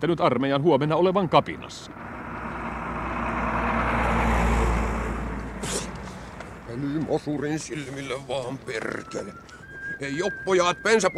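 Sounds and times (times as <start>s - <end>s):
speech: 0.0s - 2.2s, 6.7s - 11.1s
general's car driving past troops: 1.7s - 8.2s.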